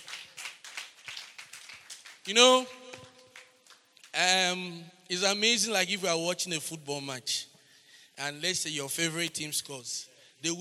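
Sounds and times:
audience clapping hands in a steady rhythmic beat: 0.0s - 4.3s
speech: 2.3s - 2.8s, 4.2s - 7.4s, 8.2s - 10.5s.

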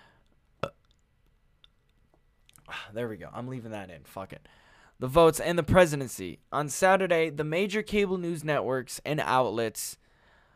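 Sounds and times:
short abrupt burp: 0.6s - 1.0s
speech: 2.9s - 10.0s.

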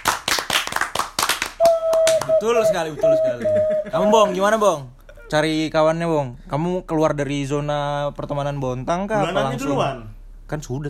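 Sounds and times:
hands clapping: 0.0s - 2.6s
speech: 2.4s - 10.8s
laughter: 2.7s - 5.3s.

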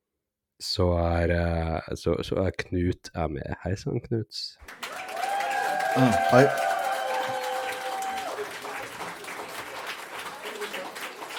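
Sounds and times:
speech: 0.6s - 4.8s, 6.0s - 6.7s
audience applauding: 4.6s - 11.3s
audience cheers and whistles: 4.9s - 8.9s.

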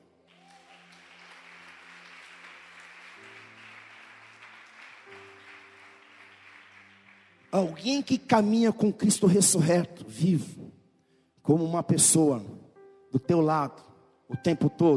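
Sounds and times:
crowd applauding: 0.0s - 8.7s
speech: 7.5s - 10.6s, 11.5s - 14.9s.

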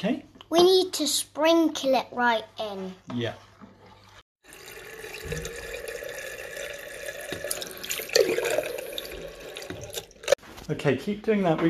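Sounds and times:
speech: 0.0s - 3.5s, 10.7s - 11.6s
cold water running from a tap: 3.6s - 10.4s.

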